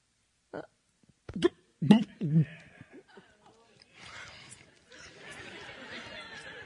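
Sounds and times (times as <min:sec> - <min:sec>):
voice imitating a cow burping up its cud: 0:00.5 - 0:02.6
light laughter: 0:04.9 - 0:06.6.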